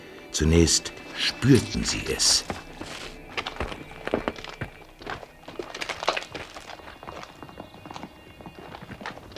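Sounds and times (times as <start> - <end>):
speech: 0.4 - 2.6
horse hooves clip-clopping: 0.9 - 9.3.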